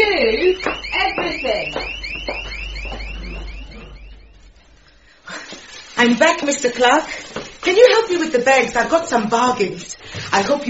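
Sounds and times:
panic alarm ringing in electronic chirps: 0.0 - 5.3
low steady hum: 0.0 - 7.7
speech: 6.0 - 10.6.

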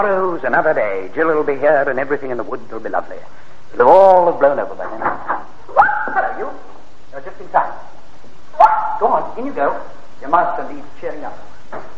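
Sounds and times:
speech: 0.0 - 7.9, 8.6 - 11.9
dog barking with a yipping edge: 8.6 - 9.0.

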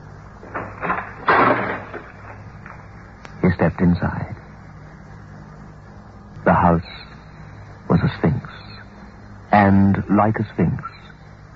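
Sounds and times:
faint low hum: 0.0 - 11.5
house door creaking and scraping as it swings open: 0.4 - 2.9
metallic rattles from a house door lock being unlocked: 0.4 - 2.9
speech: 3.6 - 4.4, 6.7 - 6.9, 9.7 - 11.0.

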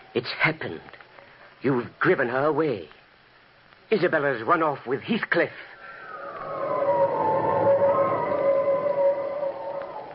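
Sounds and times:
speech: 0.2 - 1.0, 1.6 - 3.0, 3.9 - 5.7
howling wind: 5.8 - 10.1.

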